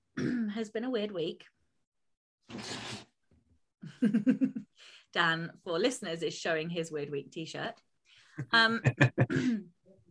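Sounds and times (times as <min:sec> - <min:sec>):
speech: 0:00.2 - 0:01.6, 0:02.5 - 0:03.1, 0:04.0 - 0:09.8
person clearing throat: 0:09.2 - 0:09.7.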